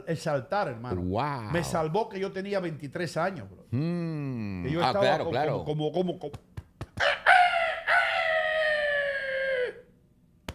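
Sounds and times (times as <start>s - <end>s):
speech: 0.1s - 7.1s
rooster crowing: 7.0s - 9.9s.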